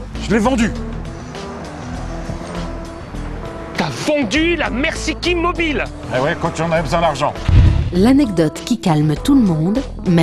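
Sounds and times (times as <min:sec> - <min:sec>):
car engine rumbling: 0:00.0 - 0:03.8, 0:07.0 - 0:08.3
road and wind noise: 0:00.0 - 0:08.2
speech: 0:00.3 - 0:00.9, 0:03.8 - 0:10.2.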